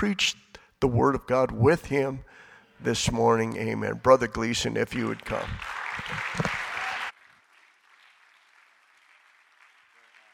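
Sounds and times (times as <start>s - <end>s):
speech: 0.0s - 6.6s
church audience clapping: 4.9s - 10.3s.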